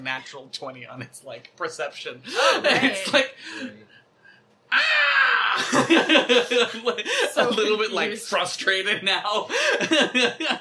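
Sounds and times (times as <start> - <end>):
speech: 0.0 - 4.0, 4.7 - 5.0, 5.6 - 10.5
voice imitating a shrieking creature: 4.7 - 5.8
laughter: 5.5 - 8.0, 9.5 - 10.5.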